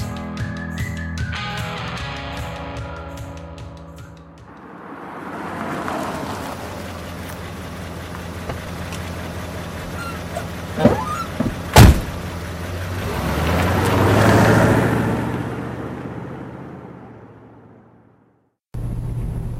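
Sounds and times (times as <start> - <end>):
car road and engine noise: 4.0 - 19.5
sharp clunks: 10.4 - 12.3.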